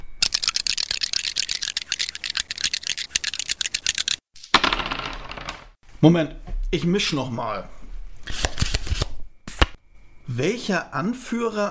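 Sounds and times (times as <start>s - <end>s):
dice rattling and clattering: 0.2s - 5.8s
speech: 6.0s - 7.8s, 10.4s - 11.6s.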